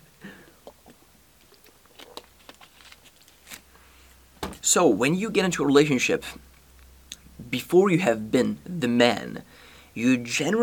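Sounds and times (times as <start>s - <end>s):
person sipping water: 0.3s - 2.4s
speech: 4.7s - 6.4s, 7.5s - 10.6s.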